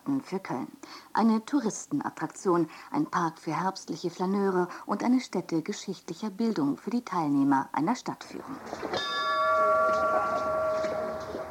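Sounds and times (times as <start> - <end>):
faint outdoor noise: 0.0 - 11.4
speech: 0.1 - 9.3
bell struck at a cemetery main entrance in Cologne Germany to begin a guided tour: 8.9 - 11.4.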